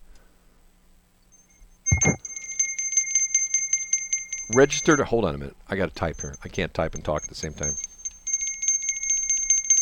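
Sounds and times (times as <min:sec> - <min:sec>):
bell ringing with a rapid buzzing trill: 0:01.3 - 0:05.2, 0:06.0 - 0:09.7
speech: 0:04.5 - 0:07.8.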